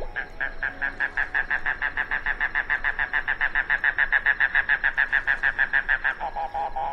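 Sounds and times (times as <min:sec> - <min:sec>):
mangrove cuckoo Coccyzus minor calling: 0:00.0 - 0:06.9.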